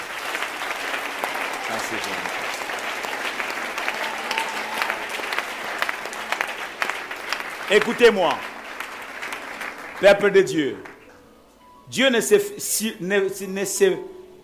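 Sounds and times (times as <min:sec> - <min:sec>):
church congregation applauding during a worship service: 0:00.0 - 0:11.2
speech: 0:01.9 - 0:02.4, 0:07.7 - 0:08.5, 0:10.0 - 0:10.9, 0:11.9 - 0:14.2.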